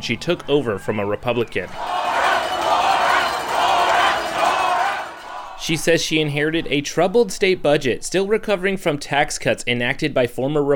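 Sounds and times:
speech: 0.0 - 2.0, 5.6 - 10.7
crowd cheering and shouting at a governor's debate at the state fair in Hutchinson Kansas: 1.6 - 6.0.

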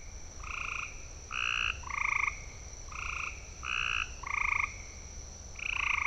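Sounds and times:
gray tree frog calling with trilled notes: 0.4 - 4.8.

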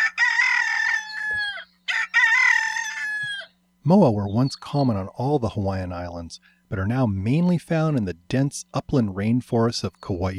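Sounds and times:
domestic rooster crowing: 0.0 - 3.6
faint steady low hum: 0.0 - 10.3
speech: 3.9 - 10.3.

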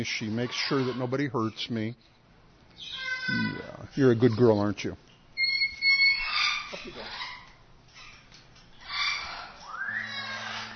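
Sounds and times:
female pet bird squawking and screeching: 0.0 - 1.6, 2.8 - 4.8, 5.4 - 10.7
speech: 0.0 - 2.2, 2.8 - 5.1, 6.8 - 7.2.

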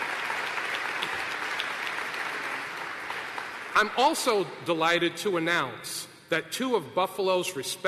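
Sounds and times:
applause from a sizable crowd at an event in Buffalo: 0.0 - 4.4
speech: 3.8 - 7.8.

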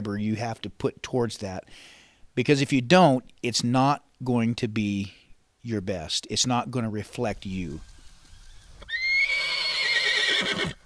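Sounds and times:
speech: 0.0 - 7.9
six-year-old mare neighing with a shrill whinny: 8.5 - 10.8.

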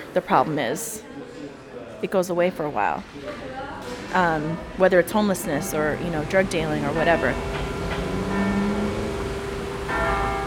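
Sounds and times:
speech: 0.2 - 1.2, 2.0 - 7.6
steady hum: 2.8 - 10.4
special church bell of St. Boniface ringing: 5.4 - 10.4.

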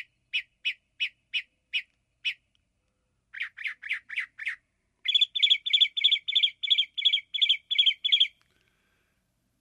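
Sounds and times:
northern mockingbird singing varied phrases: 0.0 - 2.5, 3.3 - 8.4.

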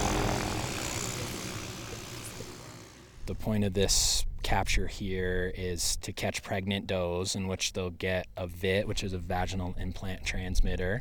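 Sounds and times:
helicopter rotor and engine whirring: 0.0 - 3.3
speech: 3.3 - 10.9.

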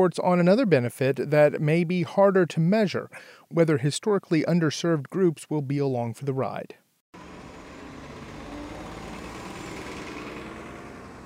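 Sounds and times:
speech: 0.0 - 6.8
broadband traffic noise: 7.2 - 11.2
bus engine idling at a transit center: 7.2 - 11.2.

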